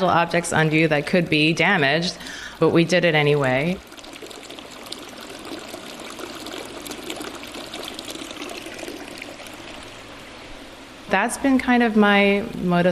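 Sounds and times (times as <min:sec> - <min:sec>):
speech: 0:00.0 - 0:03.9, 0:11.1 - 0:12.9
running water flowing through a gallery: 0:02.6 - 0:10.8.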